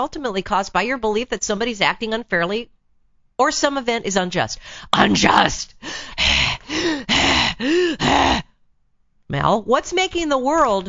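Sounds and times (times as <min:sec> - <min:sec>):
speech: 0:00.0 - 0:02.7, 0:03.4 - 0:08.5, 0:09.3 - 0:10.8
man breathing heavily with strained groans: 0:05.8 - 0:08.5.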